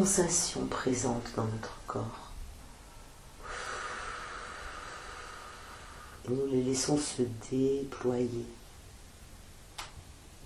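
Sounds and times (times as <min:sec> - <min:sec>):
speech: 0:00.0 - 0:02.3, 0:06.3 - 0:08.6
deep breath drawn in during a guided meditation: 0:02.9 - 0:06.2.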